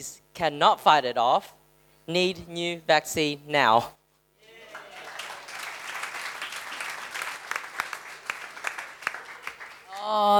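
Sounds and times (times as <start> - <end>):
speech: 0.0 - 4.0, 10.1 - 10.3
audience applause: 4.4 - 10.1.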